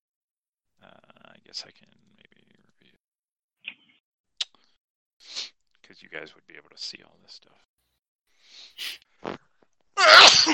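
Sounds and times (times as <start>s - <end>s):
speech: 1.5s - 2.1s, 5.9s - 7.7s, 8.5s - 9.4s
person sneezing: 8.8s - 9.4s, 10.0s - 10.5s.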